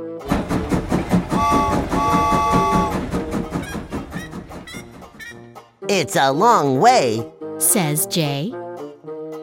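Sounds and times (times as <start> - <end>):
yellow train rolling along the tracks: 0.2 - 5.4
horn-like tone: 1.3 - 3.0
speech: 5.9 - 8.6.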